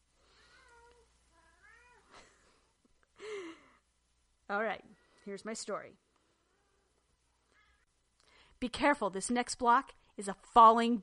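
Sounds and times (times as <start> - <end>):
domestic cat meowing: 0.4 - 2.1
speech: 4.5 - 6.0, 8.6 - 11.0.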